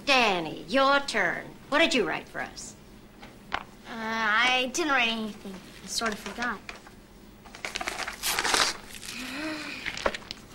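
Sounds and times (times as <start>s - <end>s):
speech: 0.4s - 2.8s, 3.5s - 6.8s
page being torn out of a book: 7.5s - 9.4s.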